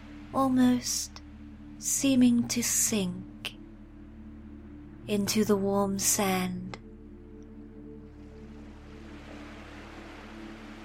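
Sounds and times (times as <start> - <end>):
low sustained droning hum: 0.0 - 10.8
speech: 0.3 - 1.2, 1.8 - 3.3, 5.1 - 6.8
gentle waves lapping at the shore: 8.1 - 10.8.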